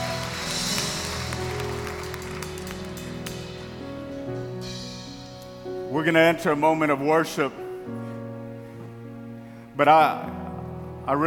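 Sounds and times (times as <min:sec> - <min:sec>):
audience clapping hands: 0:00.0 - 0:04.1
speech: 0:06.0 - 0:08.0, 0:09.8 - 0:10.4, 0:11.1 - 0:11.2.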